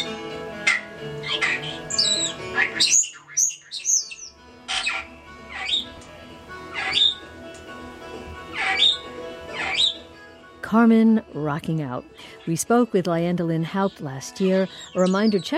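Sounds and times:
female pet starling chattering and singing: 0:00.0 - 0:07.3, 0:08.5 - 0:10.1, 0:12.4 - 0:15.5
speech: 0:02.6 - 0:03.0, 0:10.7 - 0:15.5.

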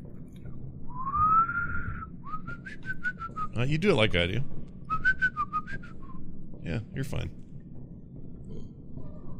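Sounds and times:
soft breathy human whistling: 0:00.9 - 0:03.5, 0:04.9 - 0:06.2
speech: 0:03.6 - 0:04.6, 0:06.7 - 0:07.4.

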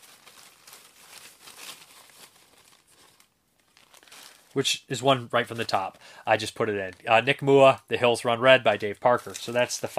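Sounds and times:
paper slips being stirred around inside a bag: 0:00.0 - 0:04.6, 0:09.0 - 0:09.9
speech: 0:04.5 - 0:09.9.

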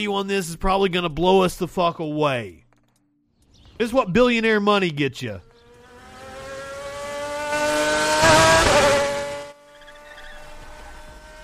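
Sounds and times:
speech: 0:00.0 - 0:02.6, 0:03.8 - 0:05.5
powerful sports car engine revving: 0:05.4 - 0:11.4
sports car tires squealing: 0:05.6 - 0:11.4.

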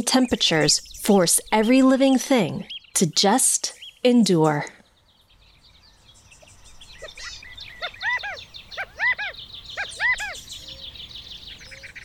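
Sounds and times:
speech: 0:00.0 - 0:04.8
birds twittering and chirping among desert plants in Arizona: 0:00.0 - 0:12.0
repeated rising-falling bird calls: 0:05.6 - 0:12.0.

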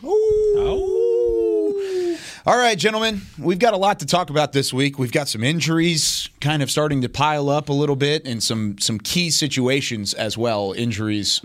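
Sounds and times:
wolf howling: 0:00.0 - 0:01.8
speech: 0:02.4 - 0:11.4.

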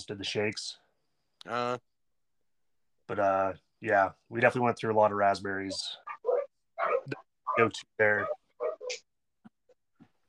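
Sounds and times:
speech: 0:00.0 - 0:00.8, 0:01.4 - 0:01.9, 0:03.1 - 0:06.1, 0:07.6 - 0:09.1
dog at a house barking as somebody walks by: 0:06.0 - 0:09.0.

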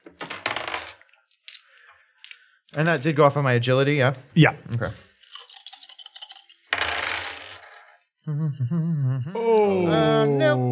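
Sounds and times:
dice rolled on a table in a tabletop game: 0:00.0 - 0:03.0, 0:05.0 - 0:07.9
speech: 0:02.8 - 0:05.1, 0:08.3 - 0:10.7.

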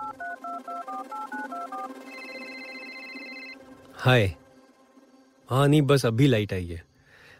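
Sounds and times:
mobile phone short keypad dialing beeps: 0:00.0 - 0:03.6
steady electronic mobile phone call ringing tone: 0:00.0 - 0:04.1
speech: 0:04.0 - 0:04.4, 0:05.5 - 0:06.9.

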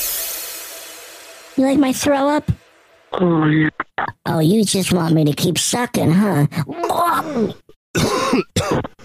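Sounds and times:
speech: 0:01.6 - 0:09.0
person coughing: 0:06.8 - 0:09.0.

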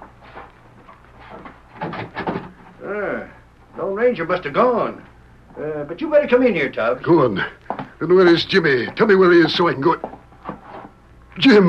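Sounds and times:
door creaking open: 0:01.2 - 0:02.8
speech: 0:02.9 - 0:03.3, 0:04.0 - 0:10.1, 0:11.4 - 0:11.6.

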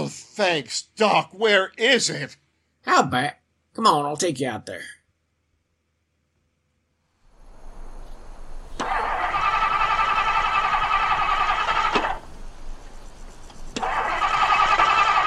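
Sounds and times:
speech: 0:00.1 - 0:05.0
low steady hum: 0:07.3 - 0:15.2
old car starter cranking but engine failing to start: 0:08.7 - 0:12.4, 0:13.6 - 0:15.2.

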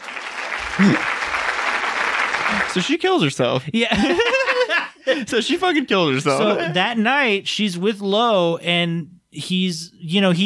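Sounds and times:
small group clapping: 0:00.0 - 0:03.0
laughter: 0:00.6 - 0:01.2, 0:02.4 - 0:02.8, 0:03.8 - 0:05.6, 0:06.2 - 0:06.8
low voice murmur: 0:00.8 - 0:01.1
speech: 0:00.8 - 0:01.1, 0:02.8 - 0:04.4, 0:05.0 - 0:10.4.

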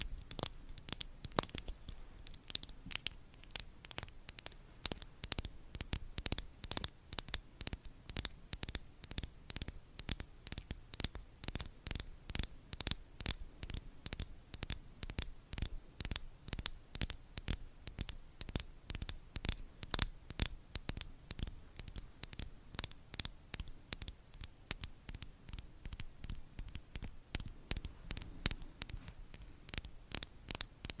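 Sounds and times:
crisp ASMR tapping into a microphone: 0:00.0 - 0:30.9
faint low hum: 0:00.0 - 0:30.9.

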